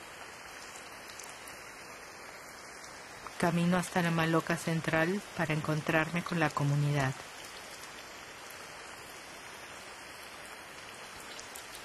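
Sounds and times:
heavy rain: 0.0s - 11.8s
speech: 3.4s - 7.4s.

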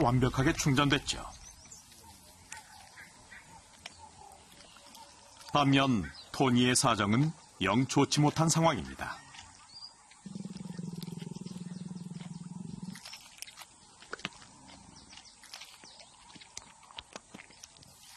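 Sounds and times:
speech: 0.0s - 1.4s, 5.5s - 9.2s
wet chewing and sharp crunches: 0.2s - 5.8s, 8.1s - 18.1s
low steady growl: 10.2s - 13.1s.

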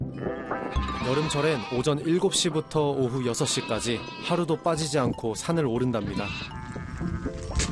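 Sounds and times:
young goats bleating: 0.1s - 2.1s, 2.9s - 4.6s, 5.8s - 7.6s
speech: 0.7s - 6.6s.

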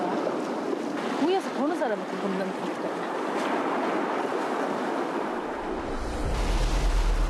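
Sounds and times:
loud sea waves crashing: 0.0s - 7.2s
speech: 1.2s - 3.2s.

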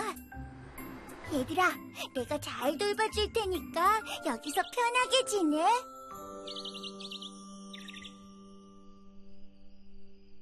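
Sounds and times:
speech: 1.3s - 5.9s
high rapid bird chirps: 6.3s - 8.3s.

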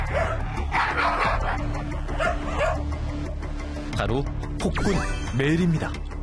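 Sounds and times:
aggressive dog barking at other dogs in a shared kennel: 0.0s - 2.9s
speech: 4.0s - 6.1s.

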